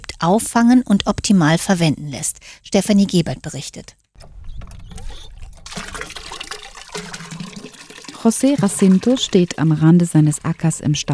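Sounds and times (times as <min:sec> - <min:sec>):
speech: 0:00.2 - 0:04.0, 0:08.2 - 0:11.1
hand-pumped water gushing and splashing into a bucket: 0:05.5 - 0:10.7.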